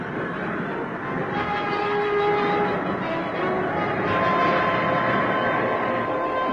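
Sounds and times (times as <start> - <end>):
train on the southern railway line at Alcázar de San Juan Spain: 0.0 - 6.5.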